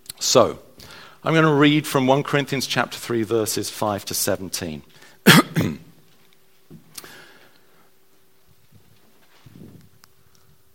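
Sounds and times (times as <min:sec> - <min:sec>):
speech: 0:00.3 - 0:00.6, 0:01.2 - 0:05.8
person coughing: 0:05.2 - 0:05.9
throat clearing: 0:05.3 - 0:05.9
quiet rustling: 0:06.0 - 0:10.7.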